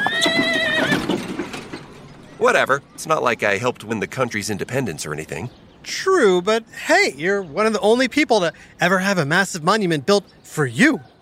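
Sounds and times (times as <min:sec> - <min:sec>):
horse whinnying: 0:00.0 - 0:01.4
horse hooves clip-clopping: 0:00.0 - 0:01.9
speech: 0:02.4 - 0:11.1.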